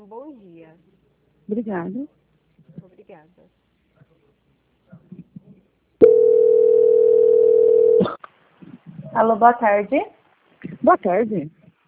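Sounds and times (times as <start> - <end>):
speech: 0.7 - 3.6, 9.2 - 11.6
telephone line tone during a call transfer: 6.0 - 8.1.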